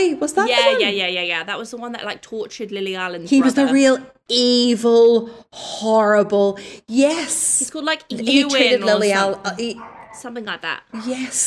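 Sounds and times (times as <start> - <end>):
speech: 0.0 - 11.4
dog barking: 9.2 - 10.4.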